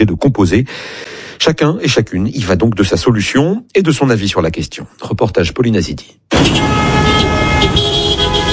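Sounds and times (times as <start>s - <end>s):
speech: 0.0s - 7.8s
car horns blaring in congested city traffic on a main boulevard in Kinshasa: 6.3s - 8.5s.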